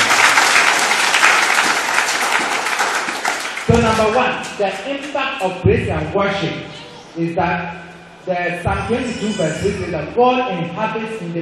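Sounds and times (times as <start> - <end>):
audience applauding: 0.0 - 4.8
speech: 3.7 - 11.4.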